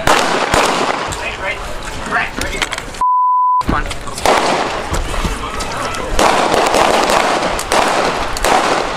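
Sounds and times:
rapid string of sharp gunshots at a memorial in Minneapolis: 0.0s - 1.3s, 4.2s - 4.9s, 6.1s - 8.9s
noisy outdoor crowd at a memorial in Minneapolis: 0.0s - 8.9s
steady bleep tone: 3.0s - 3.7s.

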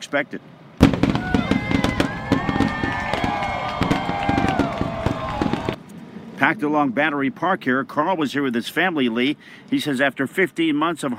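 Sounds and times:
speech: 0.1s - 0.6s, 6.4s - 11.1s
fireworks crackling and booming over the water: 0.8s - 5.8s.

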